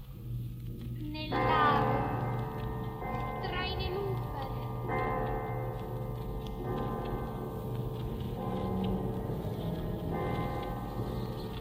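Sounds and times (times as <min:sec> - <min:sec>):
sunken church bell tolling: 0:00.1 - 0:11.5
speech: 0:01.1 - 0:01.6.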